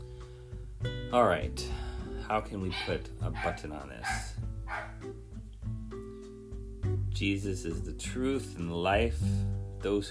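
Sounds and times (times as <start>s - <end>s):
speech: 1.1s - 5.2s, 7.2s - 10.0s
excited dog barking at someone arriving home: 2.7s - 5.0s.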